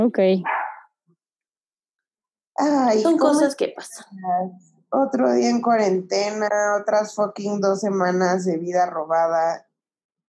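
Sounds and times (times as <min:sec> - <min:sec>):
speech: 0:00.0 - 0:00.6, 0:02.6 - 0:09.7
dog barking: 0:00.4 - 0:00.9.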